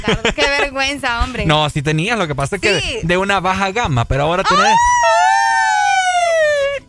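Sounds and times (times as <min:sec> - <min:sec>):
laughter: 0:00.0 - 0:01.5
speech: 0:00.0 - 0:05.5
ambulance siren wail: 0:04.5 - 0:06.8.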